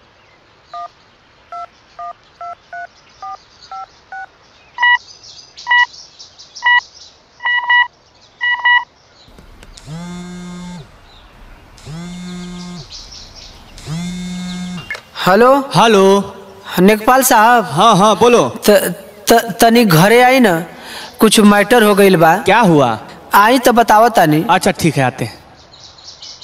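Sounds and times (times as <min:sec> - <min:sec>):
faint birdsong: 0:00.0 - 0:18.3, 0:24.2 - 0:26.4
repeating ringback-style tone: 0:09.4 - 0:15.2
speech: 0:15.3 - 0:25.4.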